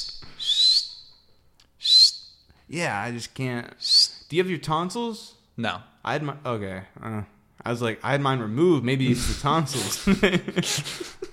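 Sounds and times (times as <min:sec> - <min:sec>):
person trying to whistle: 0:00.0 - 0:01.2, 0:01.8 - 0:02.4, 0:03.8 - 0:04.3
speech: 0:02.7 - 0:11.3
laughter: 0:09.1 - 0:11.3.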